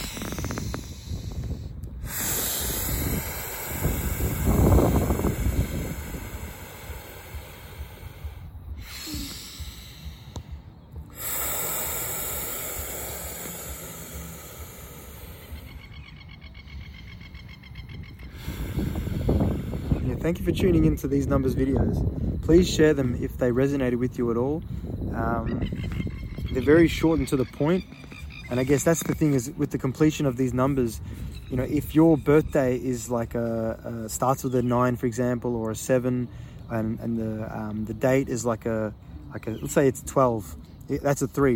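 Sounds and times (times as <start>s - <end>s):
slow deep breathing in a breathing exercise: 0.0s - 23.2s, 24.5s - 25.4s, 30.2s - 32.0s, 36.2s - 37.7s
speech: 20.2s - 41.5s.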